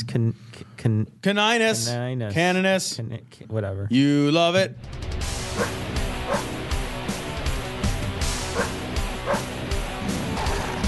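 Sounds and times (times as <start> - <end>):
speech: 0.1 - 6.6
loud, dense heavy metal music: 4.8 - 10.8
pit bull barking and growling: 5.5 - 6.6, 8.5 - 9.6, 10.2 - 10.8.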